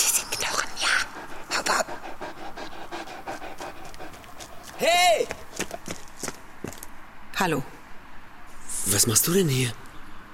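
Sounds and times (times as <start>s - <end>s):
dog panting: 0.0s - 6.0s
speech: 4.8s - 5.4s, 7.4s - 7.7s, 8.9s - 9.8s.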